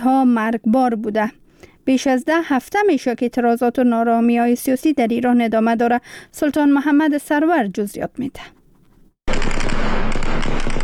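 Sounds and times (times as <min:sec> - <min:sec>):
speech: 0:00.0 - 0:08.6
loud rapid gunfire: 0:09.3 - 0:10.8.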